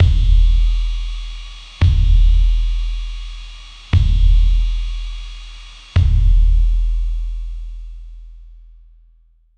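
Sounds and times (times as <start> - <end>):
drum machine beat: 0.0 - 5.3, 5.9 - 7.3.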